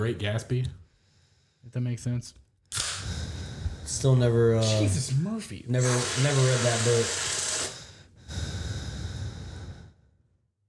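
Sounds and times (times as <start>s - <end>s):
speech: 0.0s - 0.8s, 1.6s - 3.1s, 3.9s - 7.3s
heavy breathing into the microphone: 0.8s - 1.7s, 3.0s - 4.8s, 6.9s - 10.2s.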